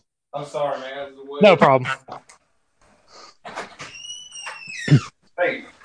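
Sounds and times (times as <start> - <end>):
speech: 0.3 - 2.4, 4.9 - 5.6
thin high door hinge squeal: 3.8 - 5.1.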